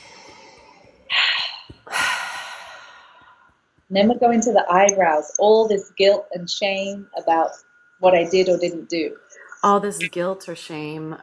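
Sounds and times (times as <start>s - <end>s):
deep breath during a guided self-acceptance exercise: 0.0s - 3.6s
speech: 3.9s - 11.2s.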